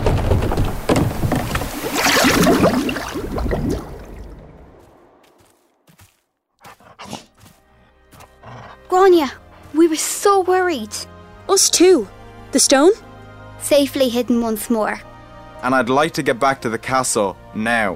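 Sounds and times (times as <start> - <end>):
knocks: 0.0 - 1.8
churning splashes of paddling as a boat moves along a river: 0.0 - 5.2
water drips: 1.2 - 4.8
speech: 9.0 - 13.0, 13.7 - 17.9.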